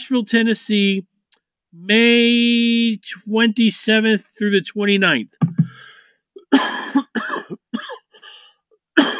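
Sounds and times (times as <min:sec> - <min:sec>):
speech: 0:00.1 - 0:01.1, 0:01.7 - 0:05.8, 0:06.5 - 0:06.9, 0:09.0 - 0:09.1
harsh coughing: 0:06.4 - 0:08.2, 0:09.0 - 0:09.1.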